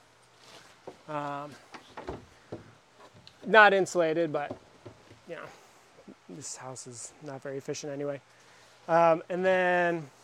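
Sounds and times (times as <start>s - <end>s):
speech: 1.1s - 2.2s, 3.4s - 4.6s, 5.3s - 5.6s, 6.3s - 10.2s
wooden trap door hinges creaking: 1.6s - 3.5s, 4.3s - 5.3s
wooden trap door thudding shut: 1.8s - 2.7s.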